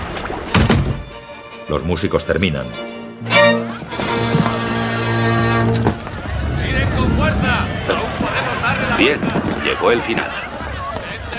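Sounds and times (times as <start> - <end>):
cabin door shutting with heavy thunks: 0.5 - 1.1
speech: 1.7 - 3.6, 9.0 - 10.5
laughter: 3.4 - 11.3
low lingering rumble: 5.8 - 9.0.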